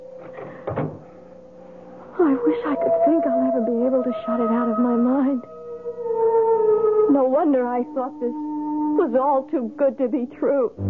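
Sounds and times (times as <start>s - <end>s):
wooden door shutting against the frame: 0.2s - 1.1s
speech: 2.2s - 5.6s, 7.1s - 10.8s.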